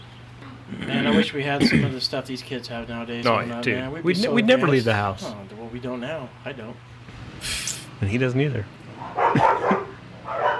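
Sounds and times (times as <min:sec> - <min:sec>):
speech: 0:00.7 - 0:09.5
several dogs barking and yapping: 0:08.9 - 0:10.5.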